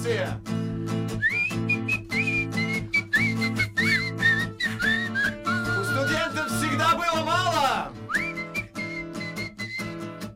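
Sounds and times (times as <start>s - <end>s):
speech: 0.0s - 0.6s
person whistling a lively wavering melody: 1.1s - 6.8s, 8.0s - 10.3s.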